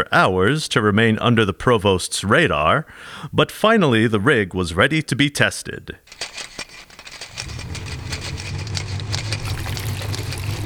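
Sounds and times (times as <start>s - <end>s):
speech: 0.0s - 6.4s
water gushing and splashing into a tray: 7.5s - 10.6s.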